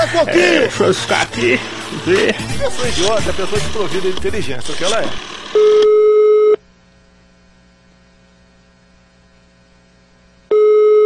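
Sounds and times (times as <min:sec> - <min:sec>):
laughter: 0:00.0 - 0:04.9
low electrical hum: 0:00.0 - 0:11.0
speech: 0:00.1 - 0:06.0
ringback tone of an outgoing call to a mobile phone: 0:05.5 - 0:06.6, 0:10.5 - 0:11.0.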